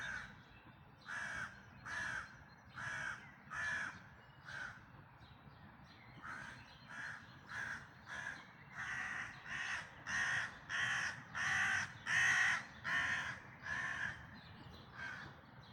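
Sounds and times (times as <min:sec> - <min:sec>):
bird giving harsh hoarse caws: 0:01.1 - 0:04.8, 0:06.2 - 0:14.2, 0:14.9 - 0:15.3.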